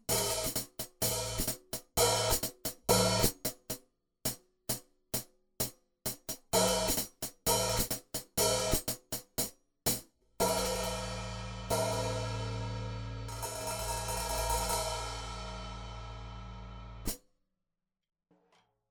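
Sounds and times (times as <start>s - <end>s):
hi-hat: 0.1s - 3.4s, 6.6s - 9.1s, 10.4s - 17.2s.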